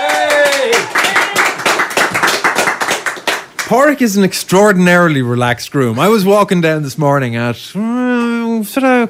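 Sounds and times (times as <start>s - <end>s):
crowd applauding: 0.0s - 4.2s
crowd cheering with a loud whoop: 0.0s - 5.4s
speech: 3.7s - 9.0s.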